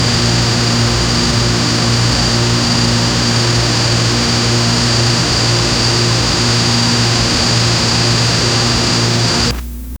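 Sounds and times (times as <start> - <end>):
lo-fi static: 0.0 - 9.9
cassette click: 8.4 - 9.9.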